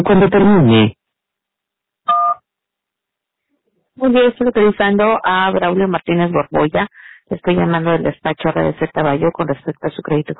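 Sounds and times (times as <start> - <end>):
speech: 0.0 - 1.0, 4.0 - 10.3
voicemail recording tone electronic beep: 2.1 - 2.4.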